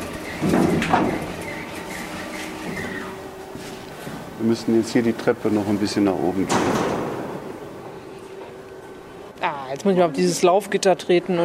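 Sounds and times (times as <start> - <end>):
door creaking at top of a boiler house: 0.0 - 3.4, 6.4 - 8.3
speech: 0.4 - 1.3, 4.4 - 6.9, 9.7 - 11.4.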